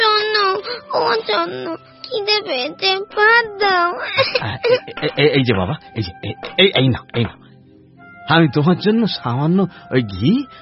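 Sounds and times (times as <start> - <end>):
young boy crying: 0.0 - 5.0
speech: 1.2 - 7.4, 8.3 - 10.6
laughter: 4.0 - 5.4.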